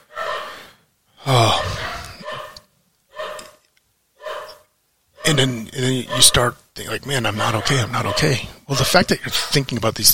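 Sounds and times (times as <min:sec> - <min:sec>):
dog barking: 0:00.0 - 0:00.6, 0:01.5 - 0:03.6, 0:04.2 - 0:06.4, 0:07.4 - 0:08.5
speech: 0:05.3 - 0:10.1.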